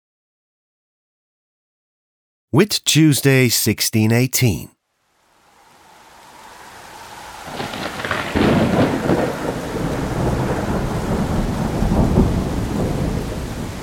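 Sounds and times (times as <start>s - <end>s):
speech: 2.5s - 4.8s
heavy rain hissing: 5.3s - 13.8s
thunder rumbling: 7.5s - 13.8s.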